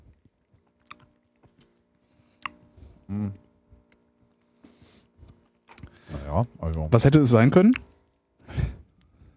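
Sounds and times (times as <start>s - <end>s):
crisp crunching and clicking as someone bites and chews food: 0.0s - 3.1s
speech: 3.1s - 3.4s, 6.4s - 7.9s
short hummed sound from a voice: 3.1s - 3.5s.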